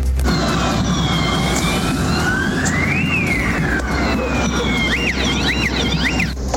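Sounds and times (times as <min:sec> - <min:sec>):
crowds shouting during street clashes: 0:00.2 - 0:06.3
police sirens wailing and yelping during street clashes: 0:00.2 - 0:06.4.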